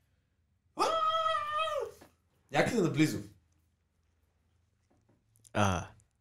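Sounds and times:
goblin in distress screaming shrilly: 0.8s - 2.0s
speech: 2.5s - 3.3s, 5.6s - 5.9s.

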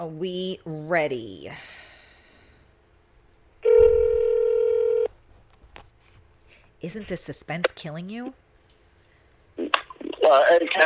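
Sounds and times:
speech: 0.0s - 1.8s, 6.8s - 8.4s, 10.3s - 10.8s
steady electronic telephone beep: 3.6s - 5.1s.

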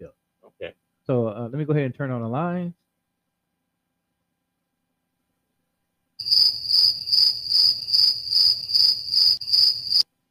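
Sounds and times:
speech: 1.1s - 2.8s
crickets chirping: 6.2s - 10.1s.

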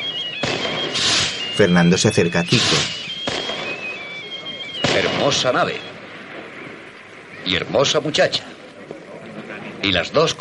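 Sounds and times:
thin high whistles of fireworks rockets: 0.0s - 5.9s
firework rocket bang at a ship launch: 0.4s - 1.5s, 2.5s - 3.8s
speech: 1.6s - 3.0s, 5.2s - 5.9s, 7.4s - 8.5s, 9.8s - 10.3s.

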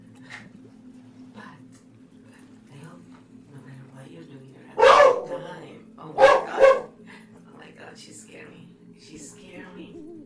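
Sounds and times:
small dog giving sharp high barks: 4.8s - 5.4s, 6.2s - 6.9s.

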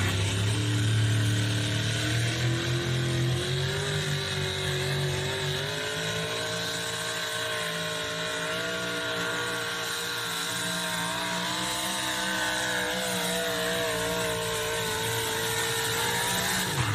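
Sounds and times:
heavy pulling-truck engine surging in RPM at a truck pull: 0.0s - 16.9s.

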